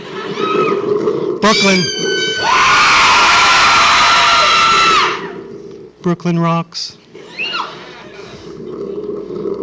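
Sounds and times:
crowd screaming and cheering on a countdown: 0.0s - 1.0s, 1.6s - 5.4s
speech: 1.4s - 2.1s, 6.0s - 7.0s.

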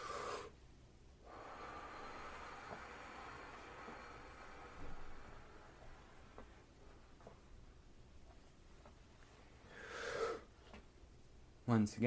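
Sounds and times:
deep breaths drawn in during a guided breathing exercise: 0.0s - 0.6s, 1.2s - 7.4s, 9.6s - 10.7s.

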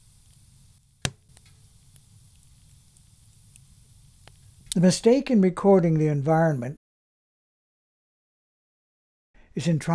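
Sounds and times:
fire burning with a low steady roar: 0.0s - 5.1s
speech: 4.8s - 6.8s, 9.6s - 9.9s.

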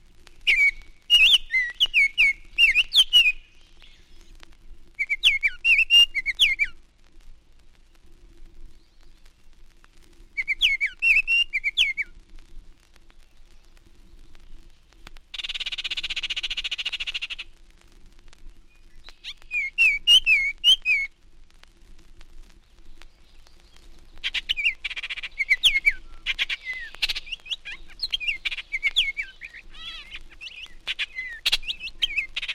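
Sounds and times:
Baltimore oriole loud clear whistled song: 0.4s - 4.0s, 5.0s - 6.8s, 10.4s - 12.1s, 18.7s - 21.1s, 24.5s - 32.5s.

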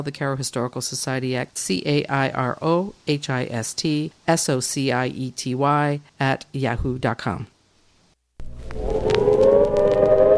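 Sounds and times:
speech: 0.0s - 7.5s
civil defense warning siren for an imminent nuclear attack: 8.6s - 10.3s.

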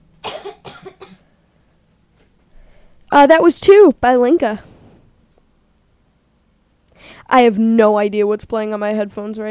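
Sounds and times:
sharp coughs: 0.2s - 1.3s
faint breathy sound: 2.5s - 3.1s, 6.9s - 7.3s
speech: 3.2s - 4.7s, 7.3s - 9.4s.

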